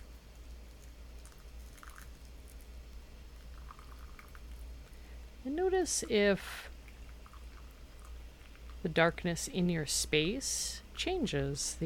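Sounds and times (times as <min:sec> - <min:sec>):
hot water poured slowly over tea leaves in a bowl: 0:01.2 - 0:02.7, 0:03.3 - 0:04.7, 0:06.9 - 0:08.8
speech: 0:05.5 - 0:06.7, 0:08.8 - 0:11.8.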